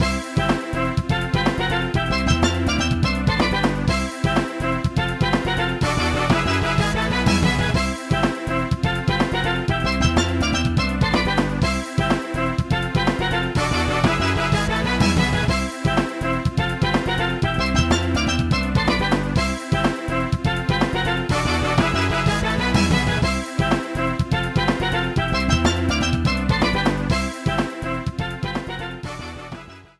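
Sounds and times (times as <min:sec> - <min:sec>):
tournament victory theme music: 0:00.0 - 0:29.9.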